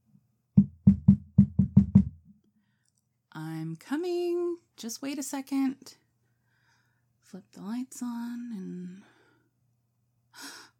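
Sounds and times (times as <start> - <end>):
firm knocking on a wooden door: 0.6 - 2.3
speech: 3.8 - 6.0, 7.3 - 9.1.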